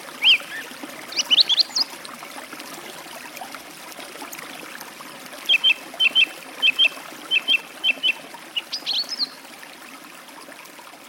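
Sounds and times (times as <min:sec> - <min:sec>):
forest stream water trickling steadily: 0:00.0 - 0:11.0
song thrush singing by a forest stream: 0:00.2 - 0:01.9, 0:05.5 - 0:09.4.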